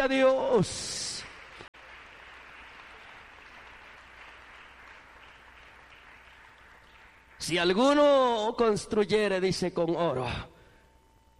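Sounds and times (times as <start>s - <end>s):
speech: 0.0s - 1.0s, 7.4s - 10.5s
audience applauding: 1.1s - 8.0s.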